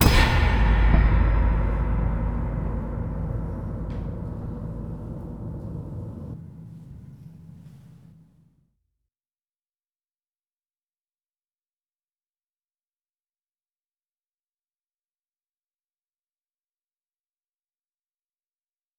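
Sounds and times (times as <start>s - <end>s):
metal hit with echo: 0.0s - 8.2s.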